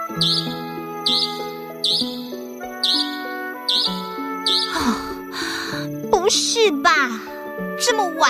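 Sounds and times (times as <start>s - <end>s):
speech: 0.2s - 1.5s, 6.3s - 8.2s
electronic car anti-theft alarm warbling and chirping: 0.2s - 4.8s.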